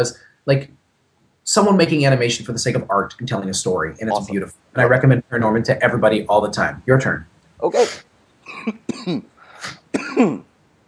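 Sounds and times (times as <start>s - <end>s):
speech: 0.0s - 0.8s, 1.5s - 10.5s
person clearing throat: 7.8s - 10.5s
person coughing: 7.8s - 10.5s.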